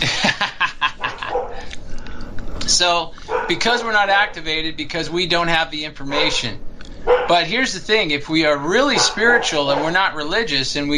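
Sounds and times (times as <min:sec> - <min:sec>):
laughter: 0:00.0 - 0:01.7
dogs yapping with sharp high-pitched barks: 0:00.8 - 0:01.8, 0:03.2 - 0:04.4, 0:06.0 - 0:10.3
speech: 0:02.8 - 0:10.9.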